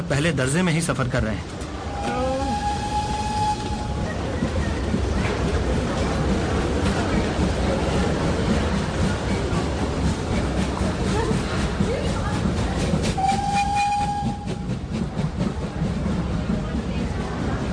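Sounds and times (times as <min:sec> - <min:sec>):
speech: 0:00.0 - 0:02.2
train arriving at a station, rumble and clatter of wheels on track: 0:00.0 - 0:17.7
tonal train horn: 0:01.9 - 0:04.2, 0:13.2 - 0:14.7.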